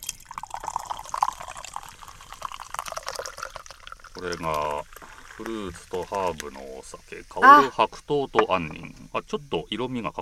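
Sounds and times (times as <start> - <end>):
carbonated chu-hi fizzing after pouring: 0.0 - 7.0
faint liquid drips: 0.0 - 7.2
speech: 4.2 - 10.2.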